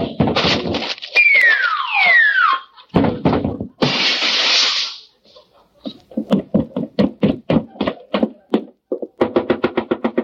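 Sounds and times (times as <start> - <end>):
cartoon-style descending whistle: 1.2 - 2.7
wooden knocks and clatters of settling debris: 2.9 - 3.8, 6.1 - 10.2
loud crash through a weak floor: 3.0 - 5.0.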